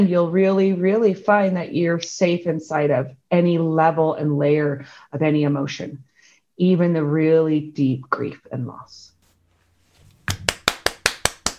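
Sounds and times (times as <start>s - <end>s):
speech: 0.0s - 9.1s
single pair of hands clapping: 10.2s - 11.5s.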